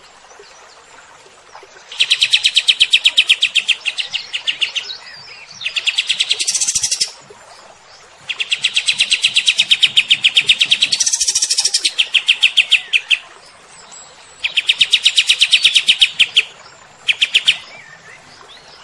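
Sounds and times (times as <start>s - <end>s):
cream-vented bulbul singing in rapid trills: 1.9s - 4.9s, 5.6s - 7.2s, 8.3s - 13.2s, 14.4s - 16.5s, 17.1s - 17.8s.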